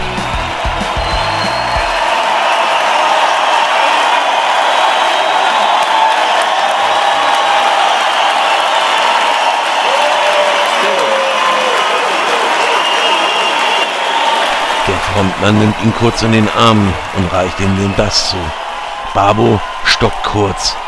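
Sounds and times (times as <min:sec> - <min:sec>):
large concert crowd applauding: 0:00.0 - 0:20.8
whoops from concert crowd: 0:00.4 - 0:14.8
speech: 0:15.2 - 0:18.6, 0:19.2 - 0:20.8.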